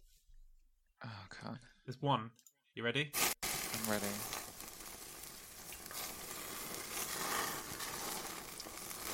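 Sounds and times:
speech: 0:01.0 - 0:03.3, 0:03.9 - 0:04.4
burger sizzling on a barbecue grill: 0:03.2 - 0:09.1.

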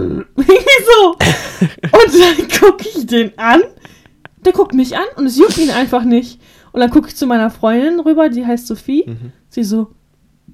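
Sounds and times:
person vocally imitating a burp: 0:00.0 - 0:00.4, 0:09.1 - 0:09.3
speech: 0:02.0 - 0:03.8, 0:04.4 - 0:10.0.

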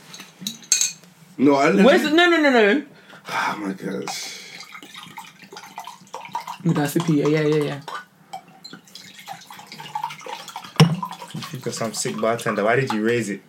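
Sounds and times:
people chatting and murmuring: 0:01.4 - 0:04.3, 0:06.6 - 0:07.9, 0:11.4 - 0:13.4
speech: 0:01.4 - 0:04.3, 0:06.6 - 0:07.9, 0:11.6 - 0:13.4
water pouring into a glass: 0:04.1 - 0:13.0.

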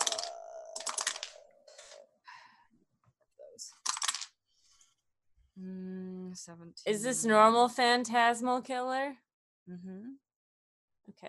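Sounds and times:
dice dropping: 0:00.0 - 0:01.4, 0:03.8 - 0:04.3
dice rattling as someone rummages: 0:00.0 - 0:01.4
speech: 0:06.4 - 0:10.2.

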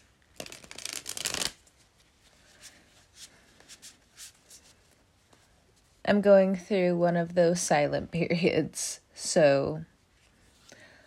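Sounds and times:
new tarot card deck being riffled: 0:00.0 - 0:04.6
tarot cards tapping and sliding as they are squared: 0:00.4 - 0:01.6
speech: 0:06.1 - 0:09.9.

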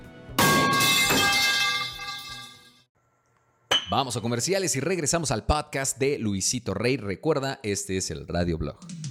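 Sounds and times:
metal horseshoe dropped on a hard floor: 0:00.4 - 0:02.7
speech: 0:03.9 - 0:09.0.

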